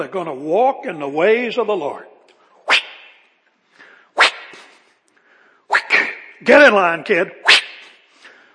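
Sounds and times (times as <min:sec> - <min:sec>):
speech: 0:00.0 - 0:02.1, 0:06.4 - 0:07.6
whip cracks: 0:02.7 - 0:03.2, 0:04.2 - 0:04.8, 0:07.4 - 0:08.0
whip swishing: 0:02.7 - 0:03.2, 0:04.2 - 0:04.9, 0:05.7 - 0:06.2, 0:07.4 - 0:08.0.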